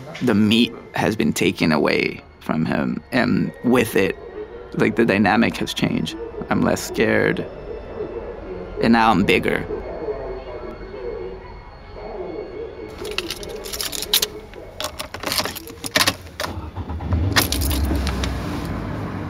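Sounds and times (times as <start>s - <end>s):
speech: 0.2s - 7.6s, 8.8s - 9.8s
clothing rustling: 12.9s - 16.5s, 17.4s - 19.1s
keys jingling: 12.9s - 16.6s, 17.3s - 18.8s.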